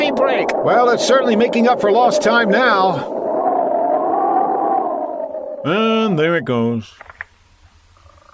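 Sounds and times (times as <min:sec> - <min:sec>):
storm wind roaring with a hollow howling tone: 0:00.0 - 0:06.5
speech: 0:00.6 - 0:03.2, 0:05.6 - 0:07.2.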